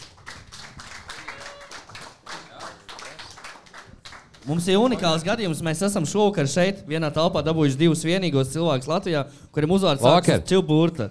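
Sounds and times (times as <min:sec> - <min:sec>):
crowd applause welcoming a musician guest: 0:00.0 - 0:05.0
speech: 0:04.4 - 0:11.1.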